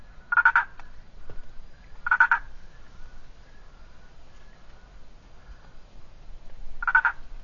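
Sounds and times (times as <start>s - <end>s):
Boana prasina treefrog calling with pulsed croaking: 0.2s - 0.9s, 2.0s - 3.1s, 6.8s - 7.3s.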